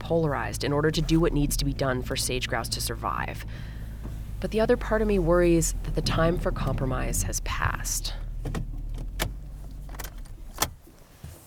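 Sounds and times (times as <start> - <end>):
parked car low engine rumble in the dark: 0.0 - 11.4
speech: 0.1 - 3.8, 4.4 - 8.7
keys jingling: 8.9 - 10.8.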